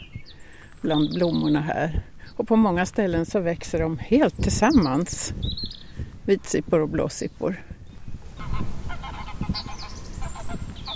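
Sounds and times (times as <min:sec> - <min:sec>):
speech: 0:00.8 - 0:07.7
geese honking while chasing each other: 0:08.4 - 0:10.9.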